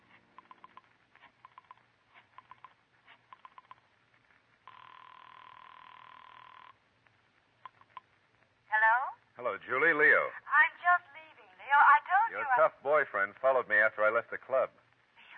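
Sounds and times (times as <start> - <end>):
telephone ringing tone of a private phone at a club: 0.4 - 3.9, 4.6 - 6.8
faint telephone clicks: 0.4 - 5.5, 6.2 - 8.6
speech: 9.4 - 10.5, 12.4 - 14.8.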